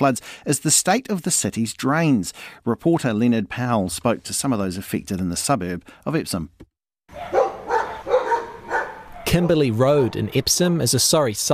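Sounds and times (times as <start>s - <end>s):
speech: 0.0s - 7.4s, 9.3s - 11.5s
dogs barking on a flooded road: 7.1s - 10.5s.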